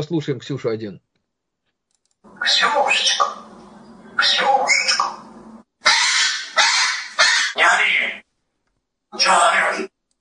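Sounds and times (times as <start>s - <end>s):
speech: 0.0s - 1.1s, 2.4s - 3.4s, 4.2s - 5.2s, 9.1s - 9.9s
parrot giving loud harsh raspy squawks: 2.3s - 8.2s, 9.2s - 9.9s.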